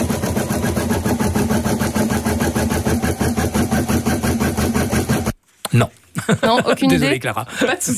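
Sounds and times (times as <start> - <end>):
embroidery machine running: 0.0 - 5.4
speech: 6.5 - 7.9.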